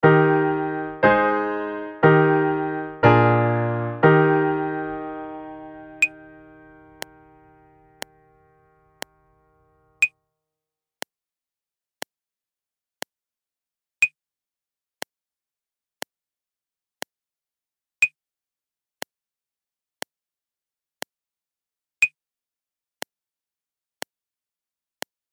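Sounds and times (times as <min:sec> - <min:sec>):
Eb major music in 4/4 without piano: 0:00.0 - 0:10.0.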